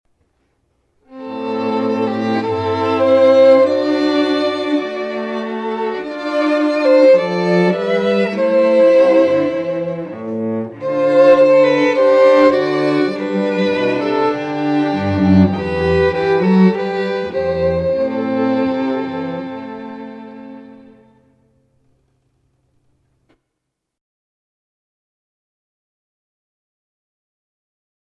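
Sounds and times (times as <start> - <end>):
strings playing: 1.1 - 21.6.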